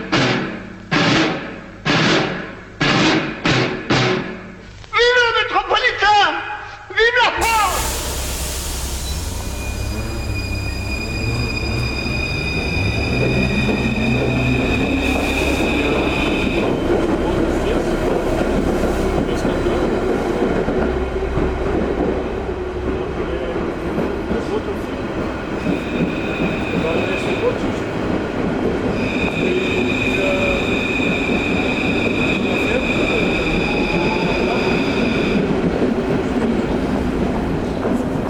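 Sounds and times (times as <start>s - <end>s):
Paris metro train rumbling through a tunnel: 0.0s - 38.2s
sustained high metallic whines and squeals of metro train: 7.4s - 16.8s, 29.0s - 35.5s.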